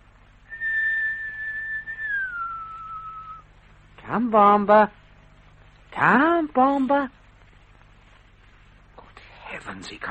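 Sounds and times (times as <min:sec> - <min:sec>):
person whistling to call an animal: 0:00.5 - 0:03.4
speech: 0:04.1 - 0:05.0, 0:06.0 - 0:07.2, 0:09.6 - 0:10.0.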